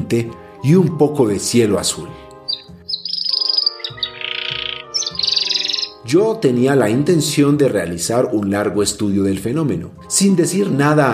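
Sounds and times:
speech: 0.1 - 2.3, 6.1 - 11.1
steady tonal backdrop: 2.2 - 6.2
canary in a cage on a house balcony chirping and trilling: 2.4 - 6.1.

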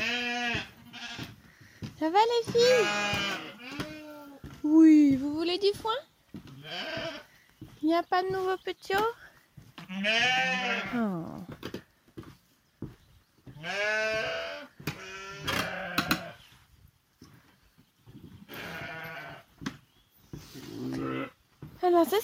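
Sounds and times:
ewes bleating in a lambing pen: 0.0 - 1.3, 2.5 - 4.4, 6.6 - 7.3, 9.9 - 11.0, 13.6 - 16.4, 18.5 - 19.5, 20.8 - 21.4
speech: 2.0 - 3.4, 4.6 - 6.1, 6.7 - 7.2, 7.8 - 9.2, 9.9 - 11.5, 13.6 - 14.7, 21.8 - 22.2.

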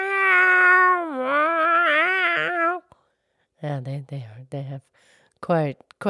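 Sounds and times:
cat meowing as if trying to talk: 0.0 - 2.8
speech: 3.6 - 6.0.

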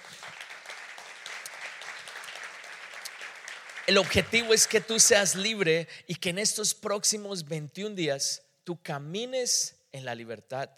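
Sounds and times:
audience applause: 0.0 - 5.4
speech: 3.9 - 10.7.

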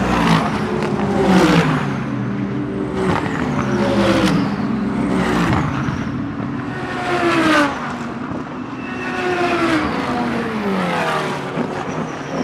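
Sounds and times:
GT race car engine revving on track: 0.0 - 12.4.

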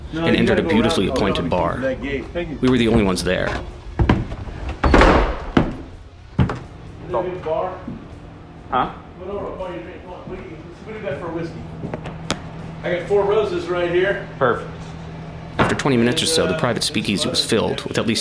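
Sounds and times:
speech: 0.1 - 3.8, 7.1 - 8.0, 8.7 - 12.1, 12.8 - 14.9, 15.7 - 18.2
heavy door off an alley creaking open: 3.4 - 6.6
heavy door thudding shut with solid knocks: 4.0 - 6.6.

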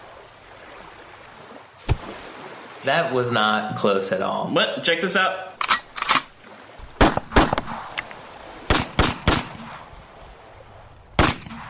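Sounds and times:
speech: 2.8 - 5.5
bullets fired from a gun: 7.0 - 8.0, 8.7 - 9.9, 11.2 - 11.6.

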